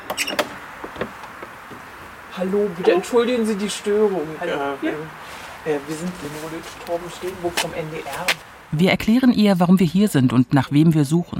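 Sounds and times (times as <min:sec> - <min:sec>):
front door of an old half-timbered house scraping and creaking as it swings: 0:00.0 - 0:02.2
speech: 0:00.2 - 0:00.5, 0:02.4 - 0:11.3.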